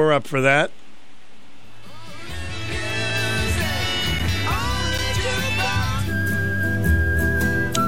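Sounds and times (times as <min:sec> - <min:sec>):
speech: 0:00.0 - 0:00.8
full band music with steady bass and rhythm: 0:02.0 - 0:07.8
whistled melody: 0:05.2 - 0:07.8.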